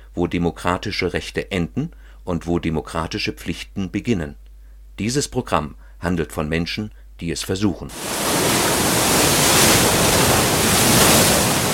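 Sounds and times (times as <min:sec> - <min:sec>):
speech: 0:00.2 - 0:04.4, 0:05.0 - 0:08.3
Indian Ocean surf breaking on the beach at Port Alfred: 0:07.9 - 0:11.7.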